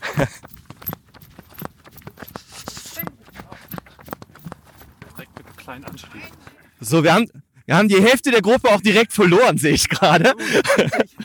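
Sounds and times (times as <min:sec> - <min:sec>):
laughter: 0:00.0 - 0:00.6, 0:09.6 - 0:11.2
footsteps of a group setting off at a run: 0:00.0 - 0:07.2, 0:08.0 - 0:09.1
speech: 0:00.2 - 0:00.5, 0:05.7 - 0:11.2.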